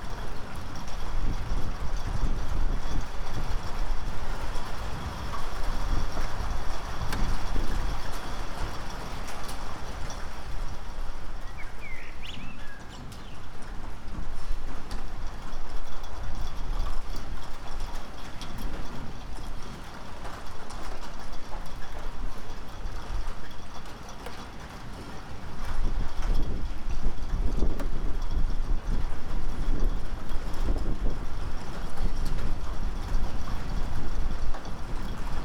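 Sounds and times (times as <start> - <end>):
strong wind blowing from an approaching storm: 0.0 - 24.0, 24.6 - 35.4.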